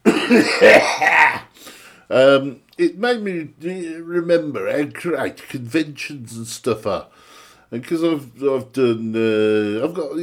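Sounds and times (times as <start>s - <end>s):
person coughing: 0.0s - 1.5s
speech: 0.3s - 1.4s, 2.1s - 10.2s.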